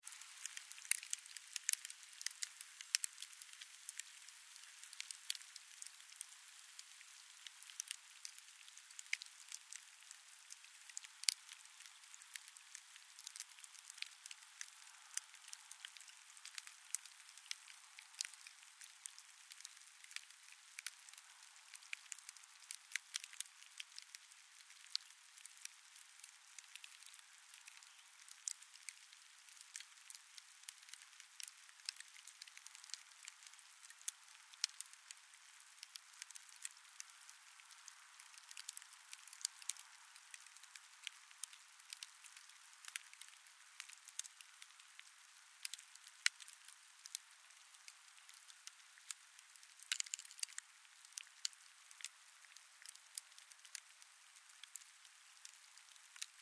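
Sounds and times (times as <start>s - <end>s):
campfire ashes sizzling after dousing with water: 0.0s - 56.4s
doused campfire snapping: 0.4s - 4.1s, 7.7s - 9.5s, 10.6s - 24.1s, 26.6s - 29.0s, 30.8s - 34.9s, 37.6s - 44.4s, 45.6s - 46.5s, 49.8s - 51.5s.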